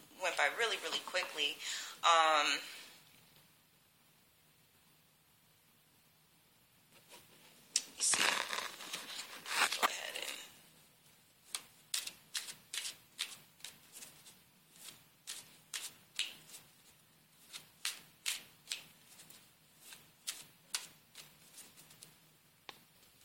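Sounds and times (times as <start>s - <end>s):
speech: 0.4s - 2.8s
playing cards being shuffled and pulled from the deck during a pick-a-card reading: 7.0s - 10.5s, 11.4s - 22.2s.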